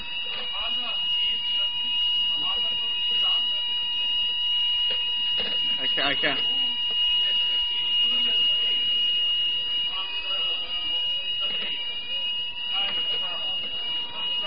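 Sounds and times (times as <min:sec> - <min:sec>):
building fire alarm ringing at high pitch: 0:00.0 - 0:14.4
speech: 0:06.0 - 0:06.5.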